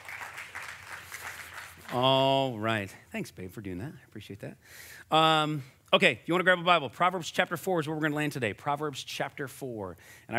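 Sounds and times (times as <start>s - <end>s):
audience applause: 0.0s - 2.3s
speech: 1.9s - 10.3s.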